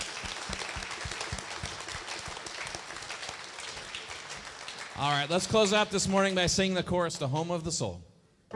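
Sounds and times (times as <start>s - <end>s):
crowd applauding in a reverberant room: 0.0s - 5.8s
speech: 5.0s - 8.1s.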